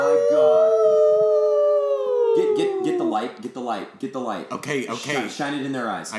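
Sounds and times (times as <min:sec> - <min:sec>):
person howling like a werewolf: 0:00.0 - 0:03.2
speech: 0:03.2 - 0:06.1.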